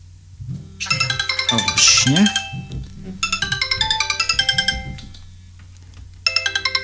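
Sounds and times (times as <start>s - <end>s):
low hum: 0.0s - 6.8s
Android smartphone ringtone with chiming notes: 0.8s - 2.6s, 6.3s - 6.8s
speech: 0.8s - 2.7s.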